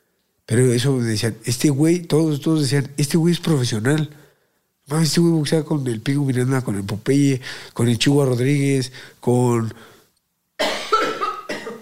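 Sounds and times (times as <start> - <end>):
speech: 0.5 - 4.2, 4.9 - 9.9
person coughing harshly: 10.6 - 11.8.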